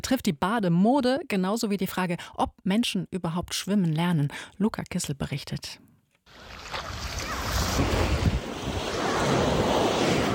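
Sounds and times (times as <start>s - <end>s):
speech: 0.1s - 6.5s
ocean waves washing onto a beach: 6.3s - 10.3s
wind buffeting the microphone: 6.6s - 10.3s.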